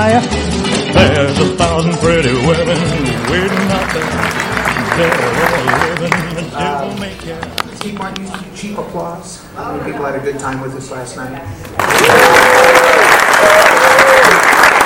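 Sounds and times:
speech: 0:00.1 - 0:01.2, 0:01.8 - 0:13.7
loud audience applause: 0:02.7 - 0:06.6, 0:11.7 - 0:14.8.

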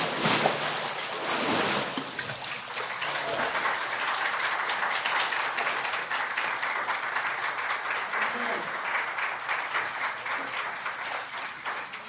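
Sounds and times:
water splash from baptism by immersion: 0:00.0 - 0:03.6
crowd applauding: 0:02.4 - 0:12.0.

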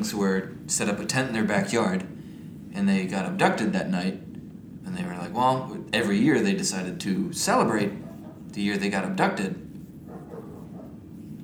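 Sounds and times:
speech: 0:00.0 - 0:02.2, 0:02.8 - 0:04.3, 0:04.9 - 0:09.6
dog barking and yelping: 0:07.7 - 0:08.6, 0:10.0 - 0:11.3.

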